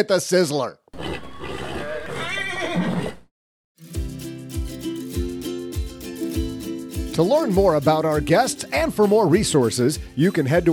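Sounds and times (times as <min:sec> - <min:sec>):
speech: 0:00.0 - 0:00.8, 0:07.2 - 0:10.7
horse neighing: 0:00.9 - 0:03.3
rhythmic music: 0:03.8 - 0:10.7.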